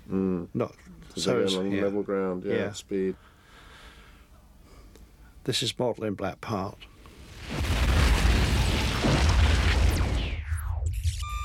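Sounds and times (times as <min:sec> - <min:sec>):
speech: 0:00.6 - 0:03.3, 0:05.5 - 0:06.9
pipeline explosion from a triggering charge: 0:07.3 - 0:11.0.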